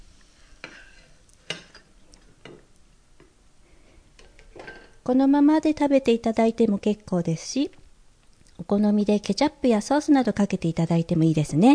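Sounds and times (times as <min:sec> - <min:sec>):
food sizzling quietly in a frying pan: 0:00.0 - 0:02.8
speech: 0:05.1 - 0:07.8, 0:08.7 - 0:11.7.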